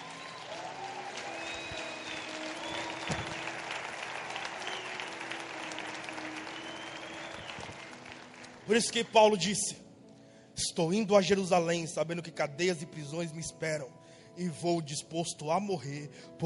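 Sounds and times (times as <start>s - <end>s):
faint whistles and cheers: 0.0s - 8.0s
large audience applause: 0.0s - 9.0s
speech: 8.7s - 9.8s, 10.8s - 16.4s.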